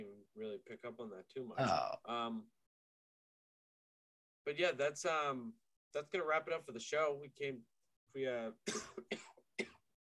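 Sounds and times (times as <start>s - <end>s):
speech: 0.0s - 2.6s, 4.4s - 10.1s
throaty vocal strain: 1.6s - 2.1s
person coughing: 8.6s - 9.8s.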